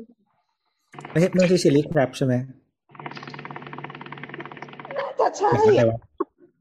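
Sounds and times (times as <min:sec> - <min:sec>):
computer fan whirring: 0:01.0 - 0:01.8, 0:02.9 - 0:05.8
speech: 0:01.0 - 0:02.6, 0:05.3 - 0:06.1.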